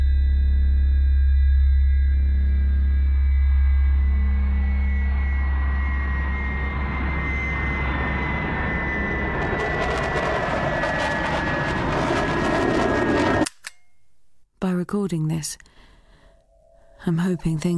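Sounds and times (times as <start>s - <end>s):
small plane engine droning while descending: 0.0s - 13.4s
speech: 15.1s - 15.7s, 17.0s - 17.7s.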